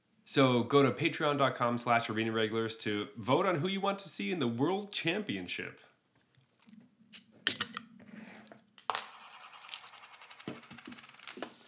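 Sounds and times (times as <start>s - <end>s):
speech: 0.3s - 5.9s
beer bottle being handled and opened: 6.5s - 7.9s.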